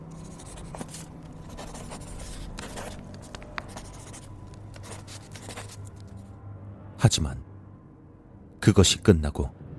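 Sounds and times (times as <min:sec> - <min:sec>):
ballpoint pen scratching on a notepad in a shop: 0:00.0 - 0:06.3
quiet hum: 0:00.0 - 0:08.5
speech: 0:07.0 - 0:07.5, 0:08.7 - 0:09.6.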